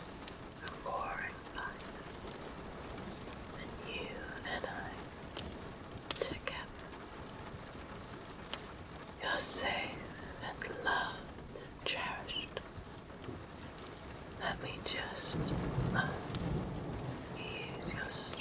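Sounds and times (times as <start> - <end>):
rain pattering on a window: 0.0 - 18.4
person whispering: 0.6 - 2.3, 3.6 - 5.2, 6.1 - 6.9, 9.2 - 12.8, 14.3 - 16.5, 17.3 - 18.4.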